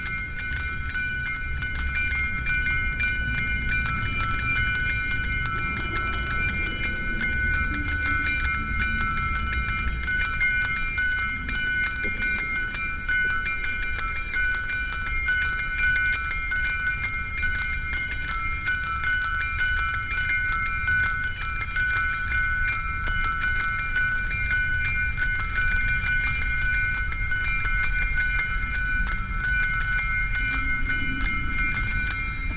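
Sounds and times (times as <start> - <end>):
church bells ringing: 0.0 - 32.5.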